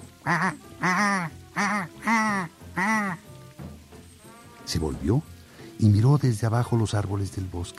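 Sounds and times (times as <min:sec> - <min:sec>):
flock of wild geese honking in flight: 0:00.2 - 0:03.3
speech: 0:00.2 - 0:03.3, 0:04.7 - 0:07.7.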